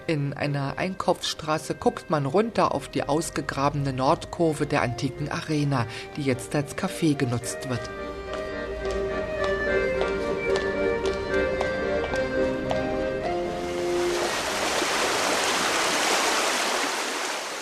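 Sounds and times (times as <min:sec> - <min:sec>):
speech: 0:00.1 - 0:08.1
melodic passage with steady tapping beats: 0:07.9 - 0:13.5
loud steady rush of flowing river water: 0:13.5 - 0:17.6.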